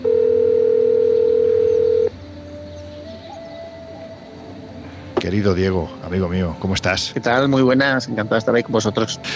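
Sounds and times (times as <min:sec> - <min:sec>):
telephone dial tone as a call is placed: 0:00.0 - 0:02.1
faint noise: 0:00.0 - 0:09.3
speech: 0:05.3 - 0:09.3.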